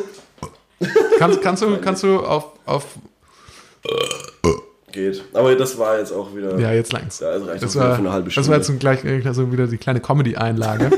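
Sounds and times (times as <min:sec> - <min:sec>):
loud drawn-out burp: 0:00.0 - 0:00.7, 0:03.8 - 0:04.8
laughter: 0:00.8 - 0:01.6, 0:10.6 - 0:10.9
speech: 0:00.8 - 0:03.1, 0:03.8 - 0:10.9
faint airy breath: 0:03.2 - 0:03.8.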